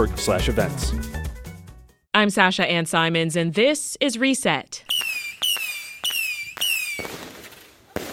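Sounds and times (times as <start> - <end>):
speech: 0.0 - 1.2, 2.2 - 4.9
fireworks banging: 4.9 - 8.1.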